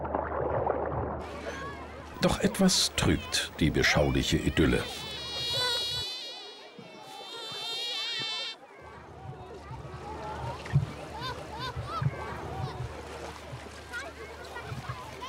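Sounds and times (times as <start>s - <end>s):
watery splashes by a lake: 0.0s - 8.5s, 9.1s - 15.2s
outdoor sounds by a lake: 0.0s - 15.2s
speech: 2.2s - 5.1s
loud high-pitched mosquito whine: 4.8s - 8.6s.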